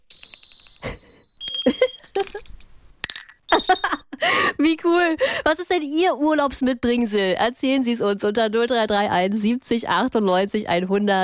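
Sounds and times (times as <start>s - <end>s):
small handcrafted souvenir bells ringing: 0.0s - 4.2s
speech: 1.6s - 1.9s, 4.6s - 11.2s.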